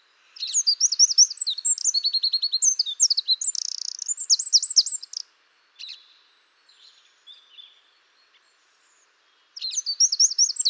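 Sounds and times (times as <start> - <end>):
Eurasian wren Troglodytes troglodytes singing: 0.4 - 5.2, 9.6 - 10.6.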